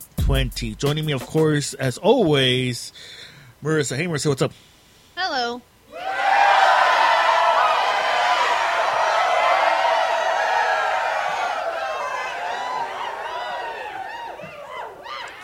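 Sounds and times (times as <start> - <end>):
speech: 0.3 - 6.1
studio audience cheering and whooping: 5.9 - 15.4.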